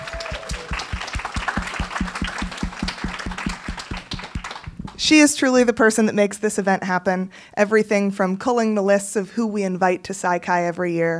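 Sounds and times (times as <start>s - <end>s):
audience applause at an honor society event: 0.0s - 5.1s
steady fast rhythmic low thumping: 0.5s - 5.1s
speech: 5.0s - 11.1s.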